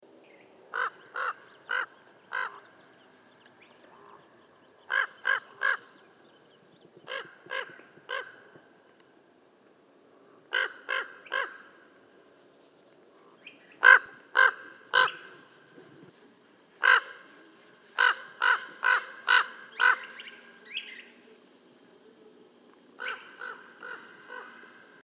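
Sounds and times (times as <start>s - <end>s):
Northern Raven Corvus corax sinuatus calling: 0.7s - 6.4s, 7.0s - 8.7s, 10.4s - 12.0s, 13.2s - 15.8s, 16.8s - 21.4s, 23.0s - 25.0s.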